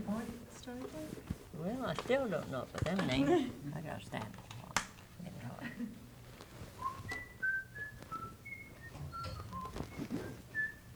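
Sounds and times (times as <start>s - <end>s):
light shuffling: 0.0s - 10.9s
speech: 0.2s - 4.5s, 5.6s - 6.0s
person whistling a folk tune: 6.8s - 10.9s.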